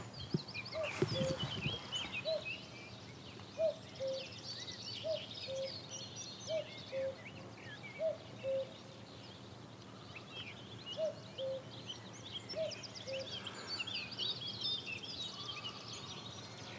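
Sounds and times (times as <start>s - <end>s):
chorus of smaller birds singing and chirping: 0.0s - 16.7s
common cuckoo calling: 0.7s - 2.6s, 3.5s - 4.3s, 8.0s - 8.8s, 11.0s - 11.7s, 12.5s - 13.4s.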